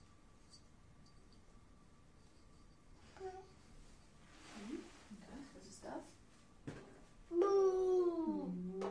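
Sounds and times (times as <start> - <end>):
child babbling: 7.3 - 8.8.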